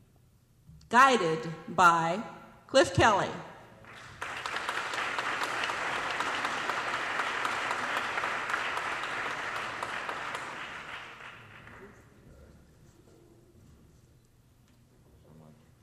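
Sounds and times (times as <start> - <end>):
speech: 0.9 - 3.5
audience applauding a woman speaker at an evening event: 3.9 - 12.1.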